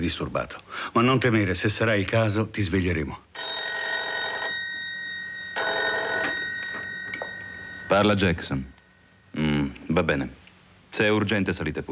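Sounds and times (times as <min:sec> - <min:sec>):
speech: 0:00.0 - 0:03.6, 0:07.9 - 0:11.8
telephone ringing: 0:03.4 - 0:08.6.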